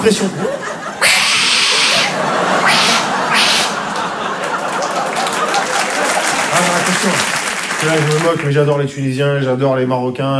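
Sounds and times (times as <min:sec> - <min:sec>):
speech: 0:00.0 - 0:00.8, 0:06.9 - 0:10.3
laughter: 0:00.1 - 0:08.4
person imitating an aggressive hissing cat: 0:01.0 - 0:03.8.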